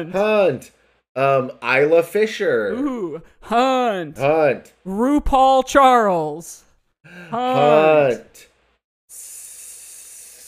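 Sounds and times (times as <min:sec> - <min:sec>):
speech: 0:00.0 - 0:08.5
person imitating a snake with a long steady hiss: 0:09.1 - 0:10.4.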